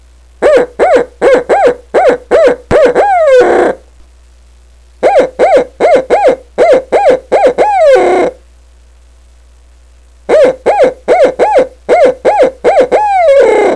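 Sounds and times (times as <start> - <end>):
owl call for turkey hunting: 0.4 - 3.8, 5.0 - 8.4, 10.3 - 13.7.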